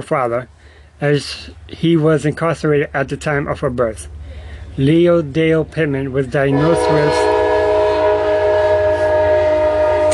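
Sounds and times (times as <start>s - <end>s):
speech: 0.0s - 7.3s
low rumble of passing train: 1.2s - 10.1s
passing train horn blast: 6.5s - 10.1s.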